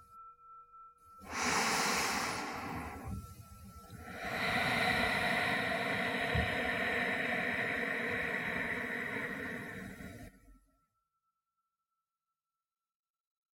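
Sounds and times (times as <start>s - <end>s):
deep inhale through the nose: 1.2s - 10.3s
long steady exhale: 1.2s - 10.5s.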